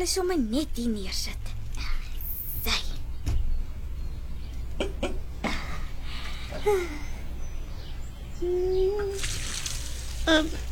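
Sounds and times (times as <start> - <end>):
speech: 0.0 - 1.6, 6.6 - 7.1, 8.4 - 9.4, 10.3 - 10.6
high chirping calls: 2.2 - 10.6
water pouring while watering plants: 9.2 - 10.6.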